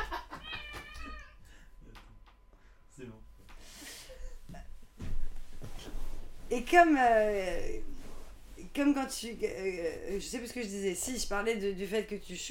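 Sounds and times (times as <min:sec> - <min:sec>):
cat meowing: 0:00.3 - 0:01.4
rustling: 0:03.4 - 0:09.6
speech: 0:06.5 - 0:07.9, 0:08.8 - 0:12.5.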